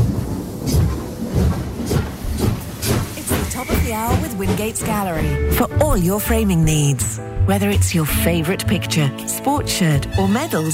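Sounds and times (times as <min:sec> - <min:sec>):
train pulling away with heavy chugs and hiss: 0:00.0 - 0:06.9
speech: 0:03.9 - 0:10.7.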